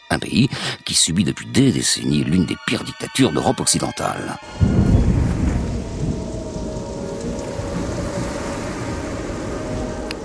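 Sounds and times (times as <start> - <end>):
speech: 0.2 - 5.0
thunder rumbling in a Caribbean tropical storm: 4.4 - 10.2
heavy rain of a tropical storm over a rough sea: 4.5 - 10.2.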